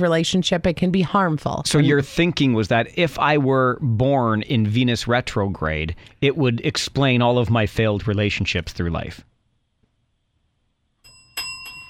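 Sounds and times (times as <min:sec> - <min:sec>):
speech: 0:00.0 - 0:09.3
bright bell ringing as a sound cue: 0:11.0 - 0:11.8.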